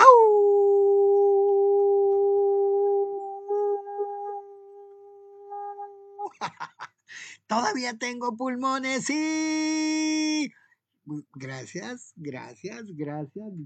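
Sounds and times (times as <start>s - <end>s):
person imitating a long steady howl: 0.0s - 6.3s
speech: 6.4s - 13.6s.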